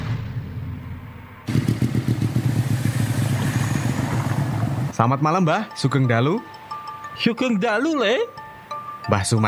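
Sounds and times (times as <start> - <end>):
motorcycle engine roaring as the bike speeds along: 1.4 - 5.0
speech: 5.0 - 6.6, 7.2 - 8.4, 9.0 - 9.4.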